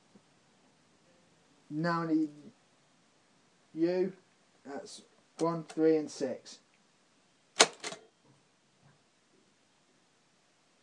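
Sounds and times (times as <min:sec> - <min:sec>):
speech: 0:01.7 - 0:02.6, 0:03.7 - 0:06.6
keyboard key clicks: 0:07.6 - 0:08.0.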